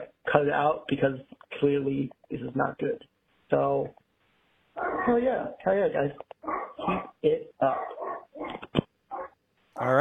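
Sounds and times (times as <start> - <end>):
speech: 0.4 - 4.0, 5.0 - 7.9, 9.8 - 9.9
dog whimpering and barking: 4.8 - 5.3, 6.4 - 9.4.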